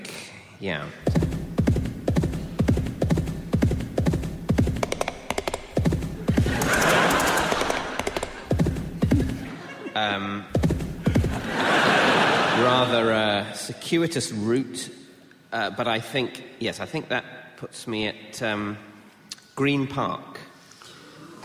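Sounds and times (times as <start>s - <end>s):
speech: 0.6s - 1.1s, 10.0s - 10.6s, 12.6s - 18.9s, 19.6s - 20.3s
horse hooves clip-clopping: 1.0s - 9.5s, 10.5s - 11.4s
laughter: 6.2s - 10.4s, 11.0s - 13.0s.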